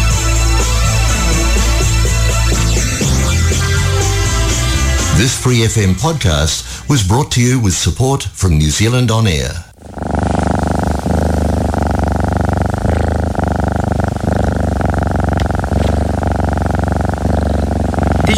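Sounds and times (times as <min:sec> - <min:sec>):
healthy well-cared-for cat purring: 0:00.0 - 0:08.7, 0:09.4 - 0:18.3
speech: 0:05.2 - 0:09.7.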